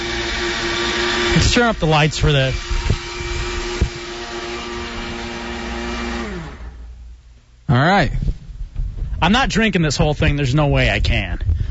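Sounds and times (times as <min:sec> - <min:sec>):
kitchen blender running: 0:00.0 - 0:07.0
speech: 0:01.3 - 0:02.7, 0:07.7 - 0:08.3, 0:09.2 - 0:11.5.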